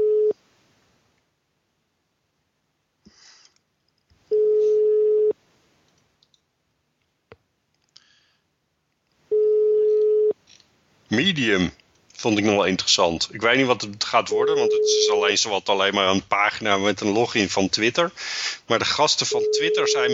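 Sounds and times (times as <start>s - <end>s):
line tone from a telephone call to a mobile phone: 0.0s - 0.4s, 4.3s - 5.4s, 9.3s - 10.4s, 14.4s - 15.2s, 19.3s - 20.1s
speech: 11.1s - 20.1s.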